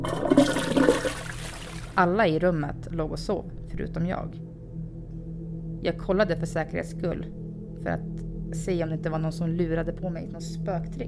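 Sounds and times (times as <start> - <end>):
toilet flushing: 0.0 - 2.0
speech: 2.0 - 4.4, 5.8 - 11.0.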